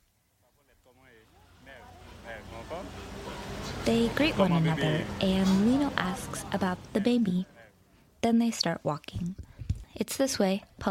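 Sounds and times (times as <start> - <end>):
road traffic rumble: 0.9 - 8.2
speech: 3.9 - 7.5, 8.2 - 10.8.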